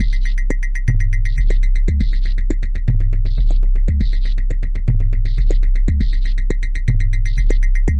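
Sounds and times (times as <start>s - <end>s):
subwoofy drum loops and breaks: 0.0s - 7.9s.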